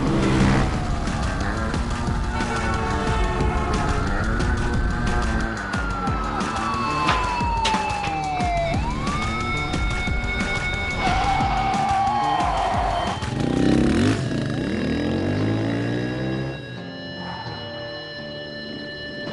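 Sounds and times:
car engine and road noise roar speeding through a chase: 0:00.0 - 0:19.3
police sirens wailing during a car chase: 0:00.0 - 0:19.3.

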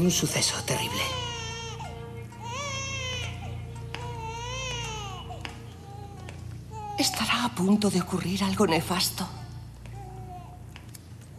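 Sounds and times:
speech: 0:00.0 - 0:01.3, 0:07.5 - 0:09.4
infant crying in long wavering wails: 0:00.4 - 0:07.2.

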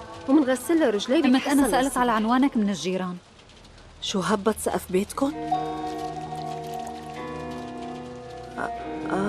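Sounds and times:
rain pouring: 0:00.0 - 0:09.2
speech: 0:00.3 - 0:03.3, 0:04.0 - 0:06.2, 0:08.6 - 0:09.2.

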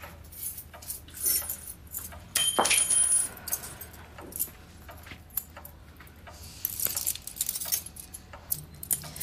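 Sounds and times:
keys jangling and clinking: 0:00.1 - 0:04.6, 0:06.6 - 0:09.2.

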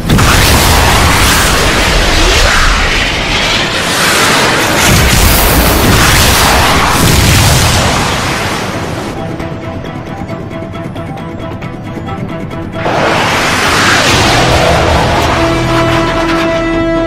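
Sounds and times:
booming blasts: 0:00.0 - 0:09.2, 0:12.8 - 0:16.9
cruise missiles fired at an enemy position: 0:00.0 - 0:09.2, 0:12.8 - 0:16.9.

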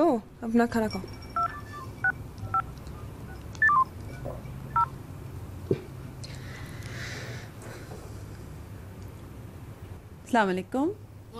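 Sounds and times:
speech: 0:00.1 - 0:01.2, 0:10.3 - 0:11.3
telephone keypad tones dialing a doctor's clinic number: 0:01.3 - 0:05.0.

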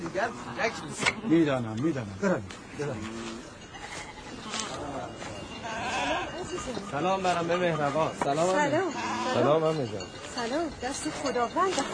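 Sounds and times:
noisy outdoor background: 0:00.0 - 0:11.9
speech: 0:00.2 - 0:03.4, 0:06.5 - 0:11.9
sheep bleating: 0:03.0 - 0:06.5, 0:08.9 - 0:09.5.

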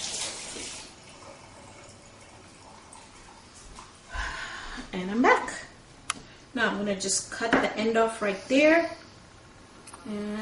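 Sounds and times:
tap water running into a kitchen sink rinsing lemongrass: 0:00.0 - 0:03.8
speech: 0:04.9 - 0:05.5, 0:06.6 - 0:09.0, 0:10.1 - 0:10.4.

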